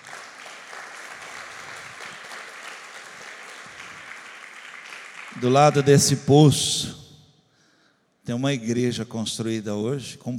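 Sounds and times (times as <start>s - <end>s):
crowd applauding: 0.0s - 6.1s
speech: 5.4s - 7.0s, 8.3s - 10.3s.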